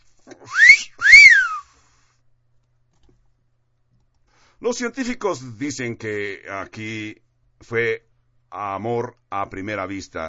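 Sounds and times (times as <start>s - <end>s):
two-note wolf whistle: 0.5s - 1.7s
speech: 4.6s - 10.2s.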